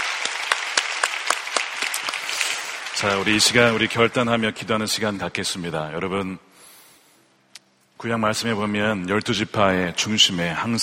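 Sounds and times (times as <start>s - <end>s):
church congregation applauding in encouragement: 0.0s - 4.7s
speech: 3.0s - 6.5s, 8.0s - 10.8s.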